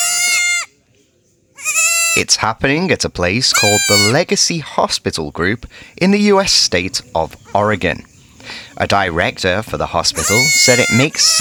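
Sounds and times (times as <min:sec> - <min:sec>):
baby goat bleating: 0:00.0 - 0:00.7, 0:01.6 - 0:02.3, 0:03.5 - 0:04.2, 0:10.2 - 0:11.4
speech: 0:02.1 - 0:11.4.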